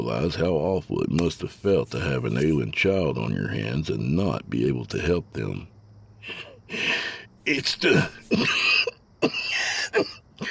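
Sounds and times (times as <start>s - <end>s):
speech: 0.0s - 9.4s, 10.0s - 10.4s
man coughing in harsh raspy bursts: 7.5s - 10.4s.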